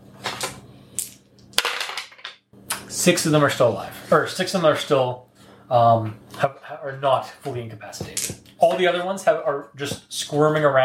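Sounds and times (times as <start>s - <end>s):
three dice clattering across a hard surface: 1.0s - 2.4s
speech: 2.9s - 10.8s.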